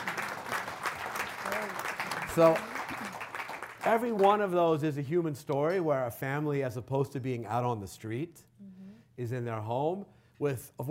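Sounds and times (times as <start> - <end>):
audience applause: 0.0 - 4.4
speech: 2.4 - 2.7, 3.8 - 8.5, 9.2 - 10.9.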